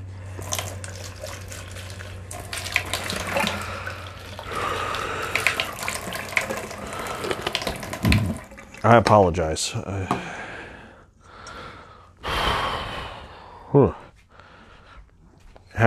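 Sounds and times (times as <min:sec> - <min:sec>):
faint low hum: 0:00.0 - 0:15.8
flavored drink pouring into a sink: 0:00.3 - 0:09.1
speech: 0:08.8 - 0:10.5, 0:13.8 - 0:14.0.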